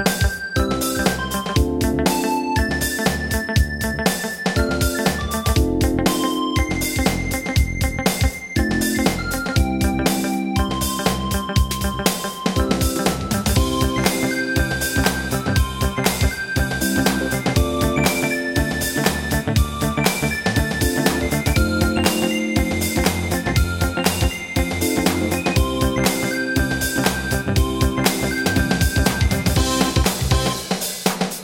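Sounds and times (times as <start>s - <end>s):
hip hop music: 0.1s - 31.4s.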